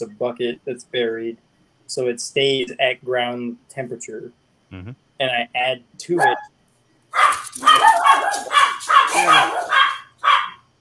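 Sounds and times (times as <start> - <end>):
speech: 0.0 - 10.4
dog barking: 6.2 - 6.5, 7.2 - 10.8.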